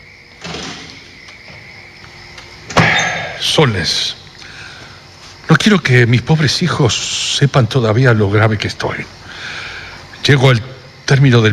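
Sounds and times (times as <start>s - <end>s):
faint steady hum: 0.0s - 11.5s
door scraping as it swings: 0.4s - 1.7s
door shutting thud: 0.4s - 1.7s, 2.6s - 3.4s
speech: 3.4s - 4.2s, 5.5s - 9.2s, 10.3s - 11.5s.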